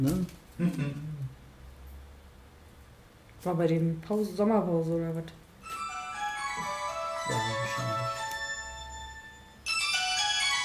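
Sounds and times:
speech: 0.0s - 1.1s, 3.4s - 5.4s
mobile phone ringtone: 5.6s - 10.6s.

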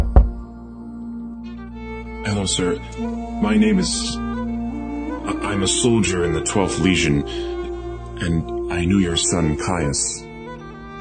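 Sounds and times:
knock on a door: 0.0s - 0.4s
speech: 2.2s - 4.2s, 5.3s - 7.6s, 8.2s - 10.3s.

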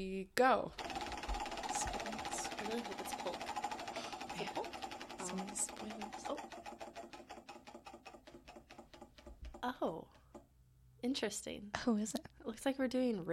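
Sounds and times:
speech: 0.0s - 0.9s, 2.6s - 3.6s, 4.4s - 7.0s, 9.6s - 10.2s, 11.0s - 13.3s
prize wheel spinning with ratchet clicking: 0.8s - 10.5s.

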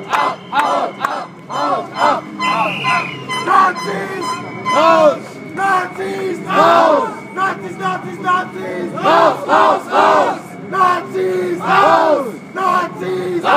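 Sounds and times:
anti-Nazi protest crowd chanting and shouting: 0.0s - 13.5s
sharp whistle: 0.2s - 7.9s.

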